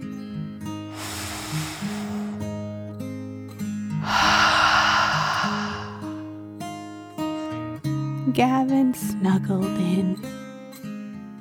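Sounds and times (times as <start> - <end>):
slow deep breath in and out: 0.9 - 3.1, 4.0 - 7.1
speech: 8.4 - 10.4.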